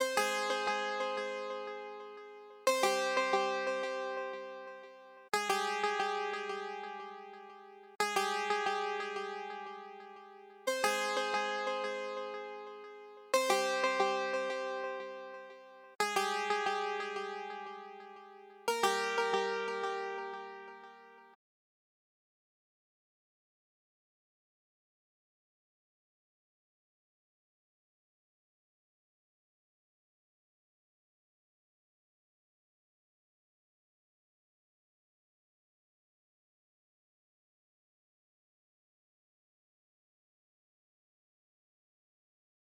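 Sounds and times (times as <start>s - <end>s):
lead synth melody loop: 0.2s - 21.3s.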